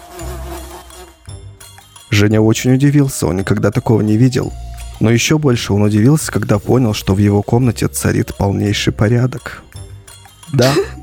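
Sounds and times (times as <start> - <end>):
flies swarming in a room buzzing: 0.0 - 2.1
speech: 2.1 - 9.7, 10.5 - 11.0.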